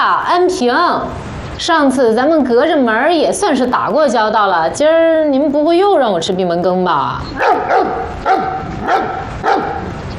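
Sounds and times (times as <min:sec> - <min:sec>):
speech: 0:00.0 - 0:10.0
small dog barking: 0:07.3 - 0:10.0.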